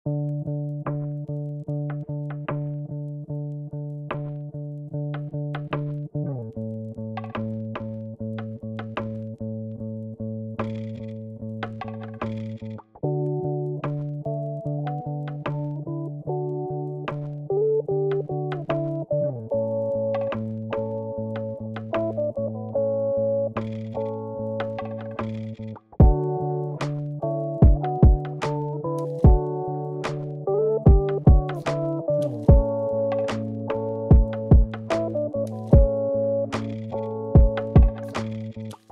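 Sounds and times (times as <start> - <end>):
lofi music: 0.1 - 9.5, 10.5 - 38.9.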